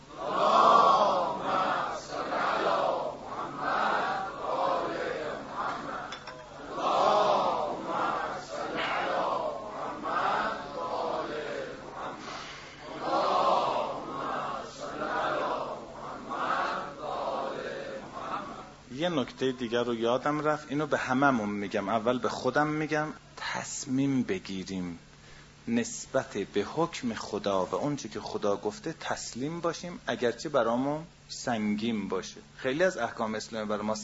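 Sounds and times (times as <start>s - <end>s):
audience chanting salawat blessings in unison: 0.0s - 18.8s
speech: 19.0s - 34.0s.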